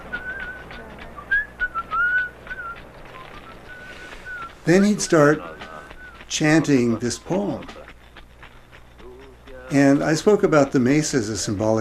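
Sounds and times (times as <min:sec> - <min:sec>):
healer whistling a melody during a healing ceremony: 0:00.0 - 0:05.1, 0:05.9 - 0:06.7
hiss: 0:00.0 - 0:11.7
speech: 0:04.7 - 0:05.5, 0:06.3 - 0:07.8, 0:09.7 - 0:11.7.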